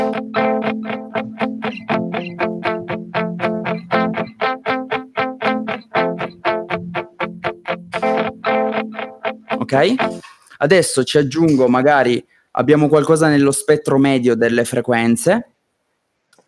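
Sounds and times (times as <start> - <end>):
electric guitar strumming rhythmic chords through an echo effect: 0.0 - 10.4
speech: 9.7 - 15.5.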